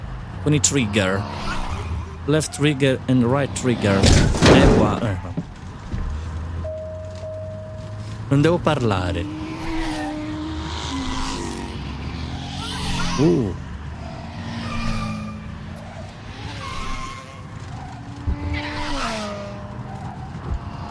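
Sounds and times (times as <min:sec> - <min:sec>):
car and motorbike engines racing past in a racing video game: 0:00.2 - 0:04.1, 0:08.9 - 0:20.8
speech: 0:00.4 - 0:05.5, 0:08.3 - 0:09.4, 0:13.2 - 0:13.6
tyres squealing in a racing video game: 0:00.5 - 0:20.8.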